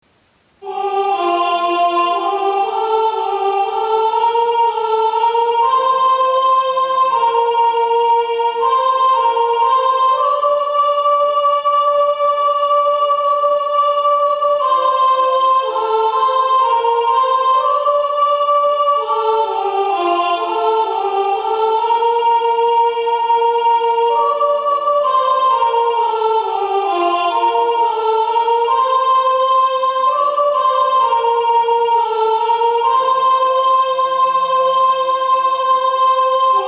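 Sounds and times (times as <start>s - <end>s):
soprano voice singing: 0.6s - 36.6s.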